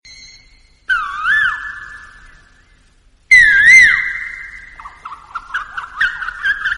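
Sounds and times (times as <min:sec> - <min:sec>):
koyal bird calling: 0:00.9 - 0:02.5, 0:03.3 - 0:06.7.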